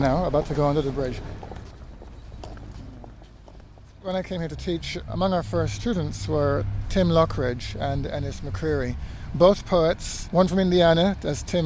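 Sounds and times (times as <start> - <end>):
speech: 0.0 - 1.5, 4.0 - 11.6
hard-soled footsteps walking across a university drill field: 0.0 - 4.5.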